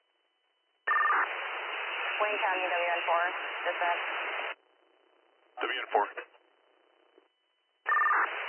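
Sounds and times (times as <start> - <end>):
phone line hiss: 0.9 - 2.3, 7.9 - 8.4
speech: 2.2 - 4.3, 5.6 - 6.3
electronic telephone disconnected-number tone: 7.9 - 8.4.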